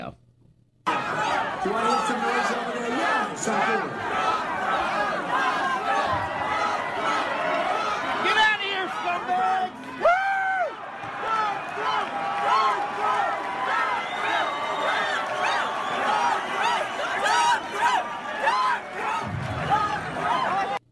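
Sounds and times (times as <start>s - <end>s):
rowdy rally crowd yelling at protesters: 0.9s - 20.8s
whoops: 10.0s - 20.8s.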